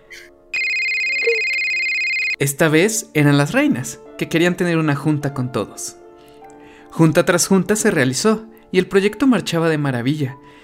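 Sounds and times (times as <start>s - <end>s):
telephone ringing: 0.6s - 2.4s
speech: 2.4s - 6.0s, 6.9s - 10.6s.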